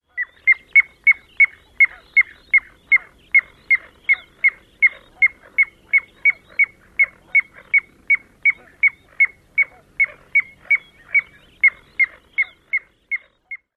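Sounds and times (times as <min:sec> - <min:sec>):
Piping Plover alarm peeps: 0:00.2 - 0:13.7.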